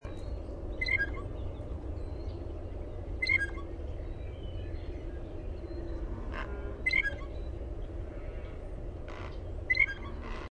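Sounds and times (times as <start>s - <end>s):
low background rumble: 0.0s - 10.5s
blue jay pumphandle calls: 0.8s - 1.3s, 3.2s - 3.7s, 6.8s - 7.4s, 9.1s - 10.5s.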